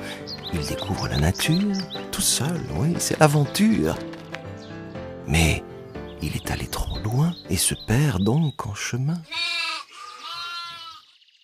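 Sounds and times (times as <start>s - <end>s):
speech: 0.5s - 4.1s, 5.3s - 9.5s
sheep bleating: 9.2s - 11.0s.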